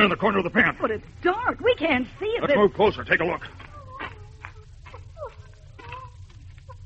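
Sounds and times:
speech: 0:00.0 - 0:03.6
steady low hum: 0:00.0 - 0:06.8
dog whining: 0:03.6 - 0:06.8.

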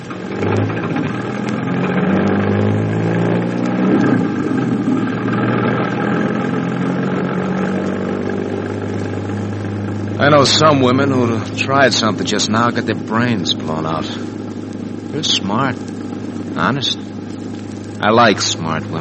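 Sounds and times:
car engine humming while the car is driven: 0:00.0 - 0:19.0
speech: 0:10.3 - 0:14.4, 0:15.2 - 0:15.9, 0:16.6 - 0:17.1, 0:18.0 - 0:19.0.

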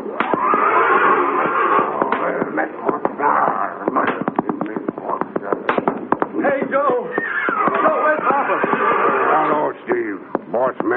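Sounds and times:
sharp thumping hooves: 0:00.0 - 0:10.9
agitated horse whinnying and snorting while being subdued: 0:00.1 - 0:02.1, 0:07.1 - 0:09.6.

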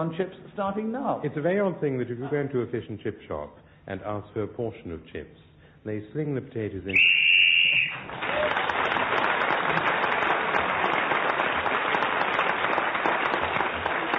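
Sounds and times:
speech: 0:00.0 - 0:07.2
referee's whistle blast: 0:06.9 - 0:08.5
audience applause: 0:07.7 - 0:14.1.

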